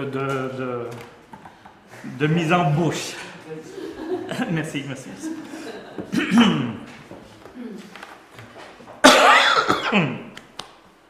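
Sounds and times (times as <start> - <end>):
speech: 0.0 - 1.2, 2.0 - 3.3, 4.3 - 5.4, 6.0 - 6.9
laughter: 3.6 - 6.7
harsh raspy coughing: 6.0 - 6.8, 9.0 - 10.3.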